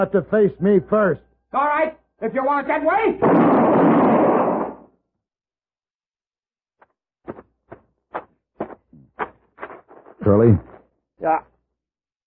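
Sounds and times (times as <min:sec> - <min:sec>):
speech: 0:00.0 - 0:04.3, 0:10.2 - 0:11.5
gunshot in a western shootout: 0:03.2 - 0:04.9.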